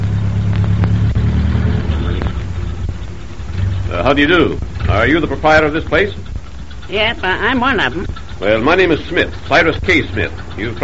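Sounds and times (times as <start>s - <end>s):
car engine rumble pulling up at a gas station: 0.0s - 10.8s
road hum: 0.0s - 10.8s
speech: 4.1s - 6.3s, 6.9s - 10.8s.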